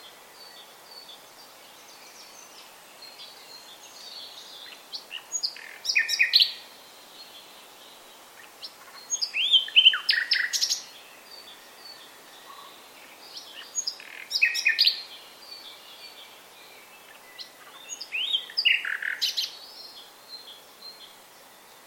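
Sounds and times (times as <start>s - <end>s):
common nightingale Luscinia megarhynchos song: 0.0s - 21.8s.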